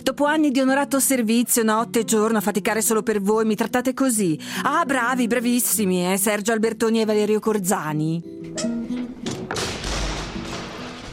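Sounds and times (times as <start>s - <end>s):
speech: 0.1s - 8.8s
door slamming shut: 9.0s - 11.1s.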